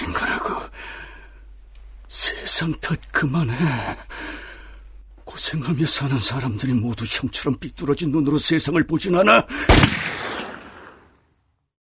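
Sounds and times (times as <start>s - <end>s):
speech: 2.6s - 4.2s, 5.4s - 10.2s
gunshot with echo: 9.7s - 11.0s.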